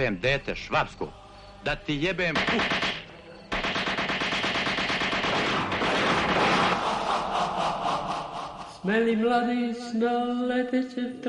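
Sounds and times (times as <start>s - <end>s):
speech: 0.0s - 3.0s, 8.8s - 11.2s
rapid automatic gunfire: 2.3s - 7.0s
laughter: 6.4s - 8.9s.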